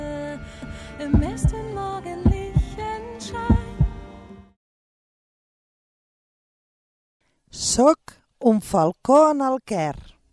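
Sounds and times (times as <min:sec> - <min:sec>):
slow deep heartbeat thumping in lub-dub pairs: 0:01.1 - 0:02.8, 0:03.5 - 0:04.1
speech: 0:07.6 - 0:10.2.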